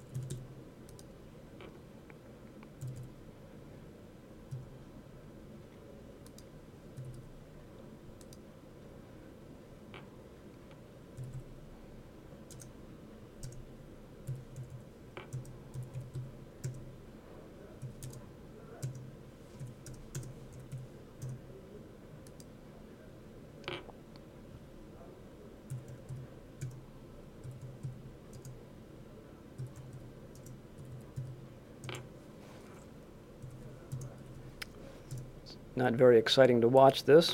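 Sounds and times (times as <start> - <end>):
typing on a computer keyboard: 0.0 - 1.1, 2.8 - 3.1, 6.3 - 7.3, 11.2 - 11.5, 12.5 - 12.7, 13.4 - 13.6, 14.3 - 16.8, 17.8 - 18.2, 18.8 - 21.4, 25.7 - 26.8, 27.4 - 28.6, 29.6 - 32.0, 33.4 - 34.4
low hum: 0.0 - 37.3
speech: 35.8 - 37.3.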